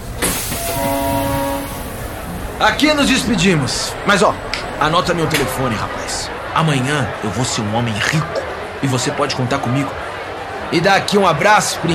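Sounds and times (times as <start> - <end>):
train pulling into its end-of-line station: 0.0 - 8.9
steady tonal horn-like note: 0.4 - 4.6
speech: 2.6 - 10.0, 10.7 - 11.9.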